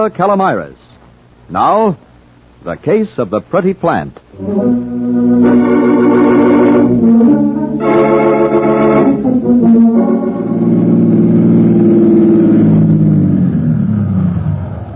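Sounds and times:
speech: 0.0 - 0.9, 1.5 - 5.6
car engine humming and revving in New York traffic: 4.4 - 14.9.

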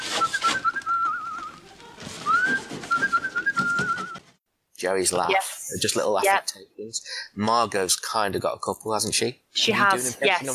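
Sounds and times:
person whistling a character's signature whistle from a TV show: 0.0 - 1.6, 2.2 - 4.2
speech: 4.8 - 10.5.

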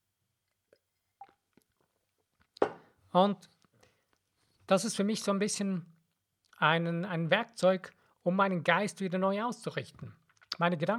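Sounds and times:
person sipping a drink: 0.4 - 2.9
speech: 3.1 - 3.6, 4.7 - 5.9, 6.6 - 10.9.

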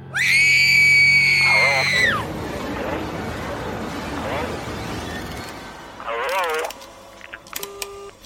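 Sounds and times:
loud piercing scream: 0.0 - 2.4
murky rumble of noise: 1.4 - 7.5.

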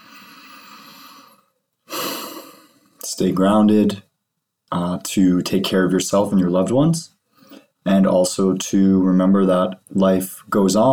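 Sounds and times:
deep breathing: 0.0 - 3.0, 7.2 - 7.8
speech: 3.2 - 4.1, 4.7 - 7.2, 7.8 - 10.9.

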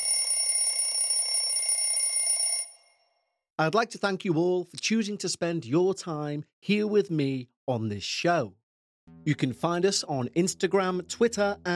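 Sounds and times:
alarm clock ringing: 0.0 - 3.1
speech: 3.6 - 8.6, 9.2 - 11.7.

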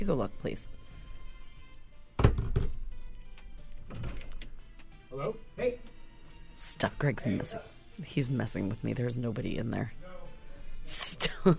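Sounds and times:
speech: 0.0 - 0.8, 5.1 - 5.9, 6.6 - 10.1, 10.8 - 11.5
knock-like bump: 2.2 - 2.8
door shut with a solid thump: 3.8 - 4.4.

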